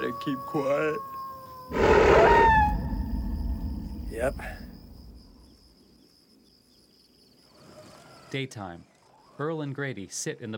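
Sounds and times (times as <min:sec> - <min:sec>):
speech: 0:00.0 - 0:01.1, 0:01.7 - 0:02.7, 0:04.2 - 0:04.7, 0:08.3 - 0:10.5
coyote howling at night: 0:00.0 - 0:05.5.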